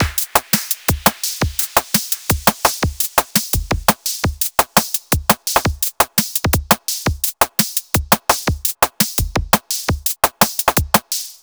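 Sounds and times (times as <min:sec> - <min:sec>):
drum patches: 0:00.0 - 0:11.4.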